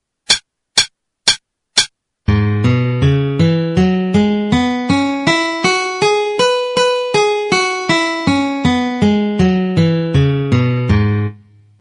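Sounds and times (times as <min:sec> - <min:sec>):
C sharp minor pentatonic melody: 0:02.3 - 0:11.4.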